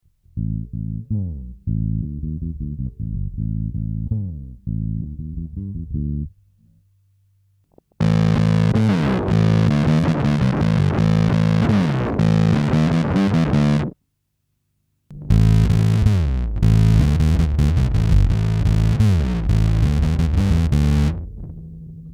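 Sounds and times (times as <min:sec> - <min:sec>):
bass guitar with flatwound strings through fuzz pedal: 0:00.2 - 0:06.5, 0:08.0 - 0:14.0, 0:15.1 - 0:22.1.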